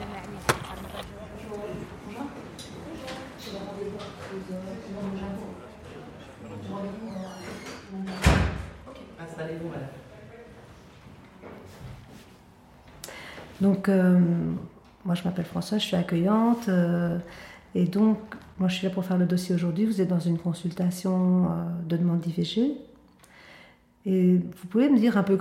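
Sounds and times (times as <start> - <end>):
room noise: 0.0 - 17.1
large white door creaking open at a contraception centre: 6.6 - 8.7
large white door shutting with a solid thump: 8.1 - 8.8
speech: 13.6 - 22.9, 24.0 - 25.3.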